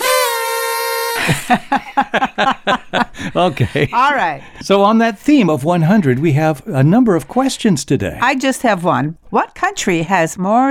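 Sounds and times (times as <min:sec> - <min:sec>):
horn toot: 0:00.0 - 0:01.6
laughter: 0:01.2 - 0:04.6
speech: 0:01.2 - 0:10.7.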